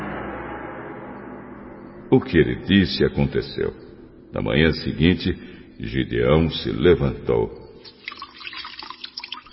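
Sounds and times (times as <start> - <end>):
speech: 2.1 - 7.6
water dripping and trickling from a wrung-out wool fleece into a bowl: 7.8 - 9.5.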